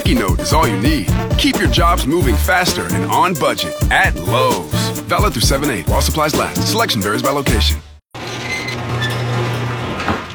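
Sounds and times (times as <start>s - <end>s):
speech: 0.1s - 7.9s
garage door motor humming with faint rattling: 8.2s - 10.3s.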